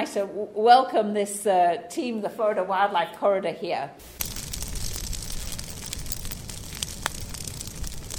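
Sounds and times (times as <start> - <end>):
speech: 0.0 - 4.3
fire crackling in an outdoor controlled burn: 4.0 - 8.1
roar of flames in an outdoor burn: 4.0 - 8.1
sharp pops and snaps of fire: 4.0 - 8.1.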